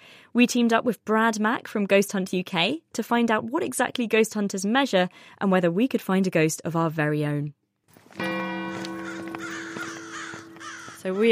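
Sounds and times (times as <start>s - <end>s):
speech: 0.3s - 8.3s, 11.0s - 11.2s
crows cawing loudly and harshly: 8.6s - 11.2s.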